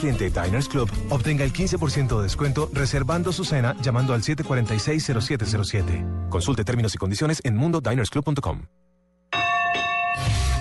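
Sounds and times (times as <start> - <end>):
speech: 0.0 - 8.9
boxing ring bell clanging to start the round: 9.3 - 10.5.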